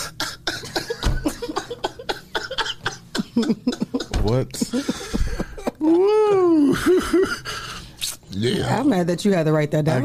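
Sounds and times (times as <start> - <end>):
person coughing: 0.0 - 5.7
laughter: 0.6 - 7.8
speech: 3.4 - 5.2, 8.4 - 10.0.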